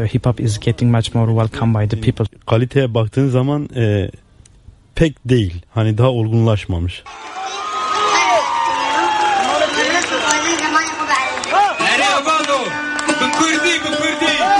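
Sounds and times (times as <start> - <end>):
speech: 0.0 - 4.2, 5.0 - 7.4
large dense concert crowd cheering and singing along: 7.1 - 14.5.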